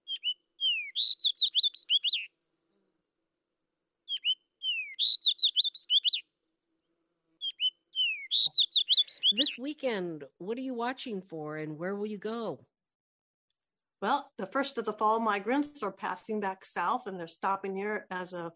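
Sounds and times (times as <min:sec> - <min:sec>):
fox sparrow singing: 0:00.0 - 0:02.8, 0:04.1 - 0:06.3, 0:07.4 - 0:10.0
speech: 0:09.3 - 0:12.7, 0:14.0 - 0:18.5.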